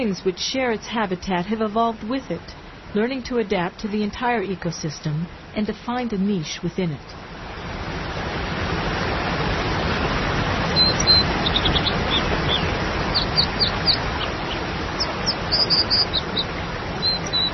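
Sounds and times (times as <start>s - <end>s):
speech: 0.0s - 7.3s
waterfall roaring: 7.2s - 17.5s
American dipper singing in high chirps and trills: 10.7s - 17.5s.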